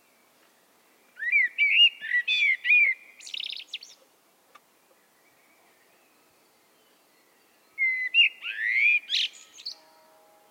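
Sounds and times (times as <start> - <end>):
common blackbird Turdus merula singing: 1.0 - 4.0, 5.0 - 10.0.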